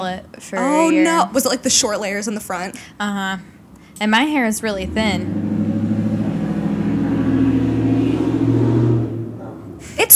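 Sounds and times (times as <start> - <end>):
speech: 0.0 - 5.4
car engine revving: 4.6 - 10.0.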